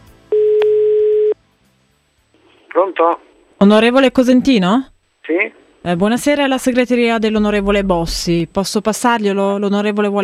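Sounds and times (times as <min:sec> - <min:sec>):
telephone ringing tone during a prank call: 0:00.3 - 0:01.4
speech: 0:02.8 - 0:10.2.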